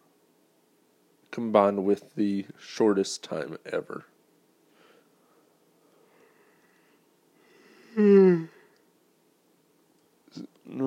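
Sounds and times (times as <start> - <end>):
speech: 1.4 - 4.1
person yawning: 7.8 - 8.7.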